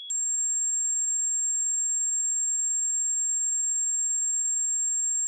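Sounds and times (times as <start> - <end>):
high-pitched ear ringing tone: 0.1 - 5.2.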